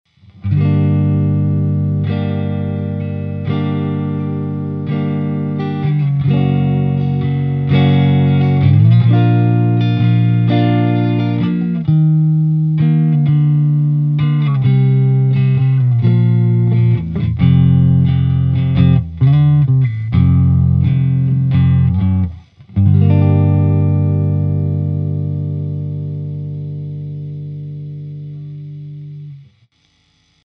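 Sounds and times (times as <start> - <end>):
electric guitar on Tele neck pickup: 0.1 - 30.3.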